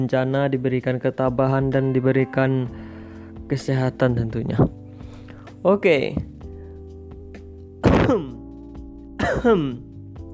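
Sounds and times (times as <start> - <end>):
speech: 0.0 - 2.9, 3.5 - 4.8, 5.6 - 6.3, 8.1 - 8.4, 9.4 - 9.9
rough throaty cough: 7.8 - 8.4, 9.2 - 9.8.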